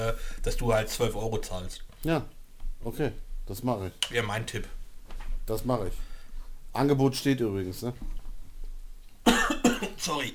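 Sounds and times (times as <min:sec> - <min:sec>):
speech: 0:00.1 - 0:04.8, 0:05.5 - 0:06.1, 0:06.8 - 0:08.2, 0:09.2 - 0:10.3
sharp coughs: 0:09.2 - 0:10.2.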